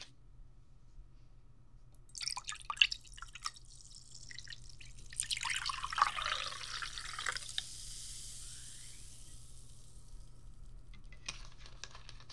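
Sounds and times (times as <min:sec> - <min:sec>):
drink being poured: 0:02.0 - 0:11.2.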